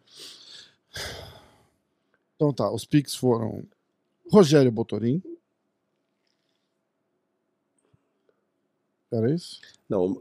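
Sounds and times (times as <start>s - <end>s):
breathy exhale: 0.1s - 1.7s
speech: 2.4s - 5.3s, 9.1s - 10.2s.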